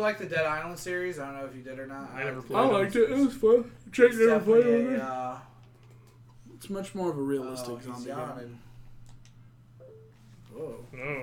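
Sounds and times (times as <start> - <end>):
speech: 0.0 - 5.5, 6.6 - 8.7, 10.6 - 11.2
soft clicks: 9.0 - 9.4
faint short electronic tone from a phone: 9.8 - 10.2.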